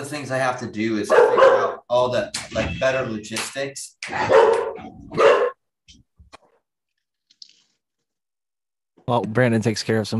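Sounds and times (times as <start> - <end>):
speech: 0.0 - 5.4, 9.1 - 10.1
dog barking: 1.1 - 1.8, 4.2 - 5.6.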